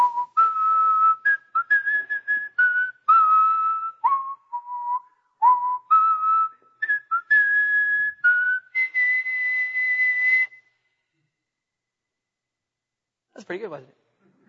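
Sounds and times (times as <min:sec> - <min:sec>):
person whistling a lively tune: 0:00.0 - 0:10.7
speech: 0:13.5 - 0:14.0.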